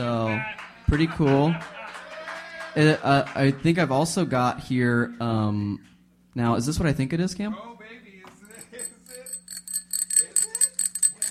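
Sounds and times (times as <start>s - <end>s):
speech: 0.0s - 1.8s, 2.8s - 7.7s
small bicycle bell ringing: 8.5s - 11.3s.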